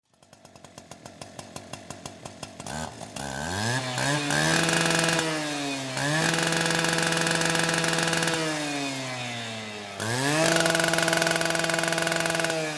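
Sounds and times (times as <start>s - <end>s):
chainsaw: 0.0s - 12.7s.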